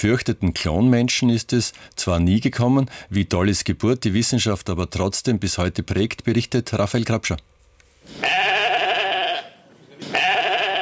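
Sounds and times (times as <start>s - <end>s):
speech: 0.0s - 8.5s
sheep bleating: 8.2s - 10.8s.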